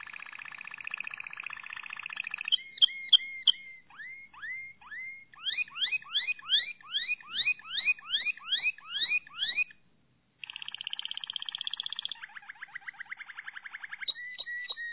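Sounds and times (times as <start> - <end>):
Malinois Waterslager canary song with whistles and rolling trills: 0.0 - 14.9.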